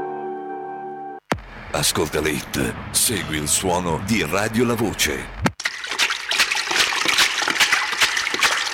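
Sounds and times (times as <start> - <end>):
speech: 1.7 - 5.4
water splashing and churning: 5.6 - 8.7.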